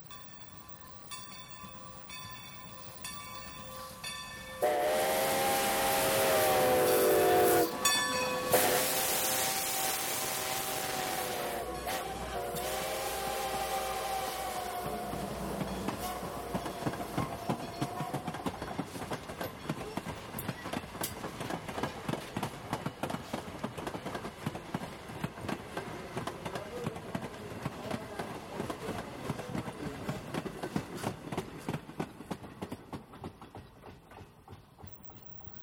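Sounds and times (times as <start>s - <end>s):
train rumbling and clattering on rails: 1.1s - 35.6s
train whistle in long tonal blasts: 4.6s - 18.5s.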